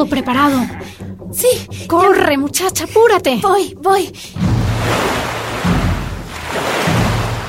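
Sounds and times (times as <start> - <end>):
speech: 0.0 - 5.0
sea waves breaking on a beach: 4.4 - 7.4.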